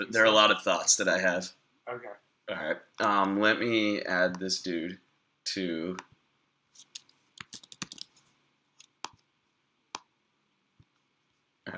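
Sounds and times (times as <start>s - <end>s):
speech: 0.0s - 6.1s
typing on a computer keyboard: 6.9s - 8.1s.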